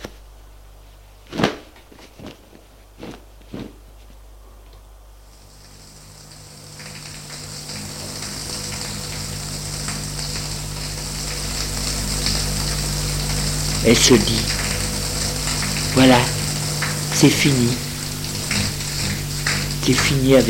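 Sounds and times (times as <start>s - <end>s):
soft thuds: 1.2s - 4.2s
shower water running: 5.2s - 20.4s
speech: 13.9s - 14.6s, 16.0s - 16.4s, 17.2s - 17.8s, 19.9s - 20.4s.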